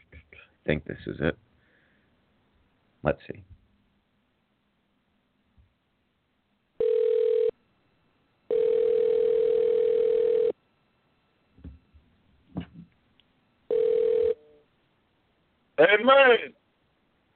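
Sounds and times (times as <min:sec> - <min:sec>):
speech: 0:00.6 - 0:01.5, 0:03.0 - 0:03.5, 0:16.0 - 0:16.6
outgoing phone call electronic ringing tone: 0:06.8 - 0:07.6, 0:08.5 - 0:10.6, 0:13.7 - 0:14.6.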